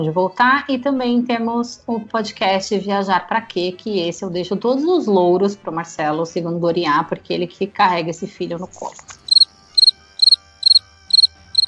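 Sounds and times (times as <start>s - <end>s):
speech: 0.0s - 9.2s
crickets chirping: 9.3s - 11.6s.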